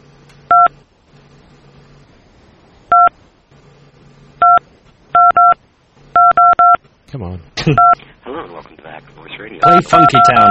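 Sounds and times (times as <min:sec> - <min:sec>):
faint low hum: 0:00.0 - 0:10.4
telephone keypad tones dialing back into a conference call: 0:05.2 - 0:05.6, 0:06.2 - 0:06.8, 0:09.6 - 0:10.4
speech: 0:07.1 - 0:10.4.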